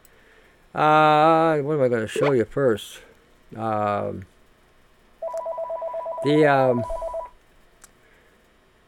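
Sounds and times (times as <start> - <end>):
speech: 0.7 - 4.3, 6.2 - 7.0
telephone ringing with an electronic trill: 5.2 - 7.3.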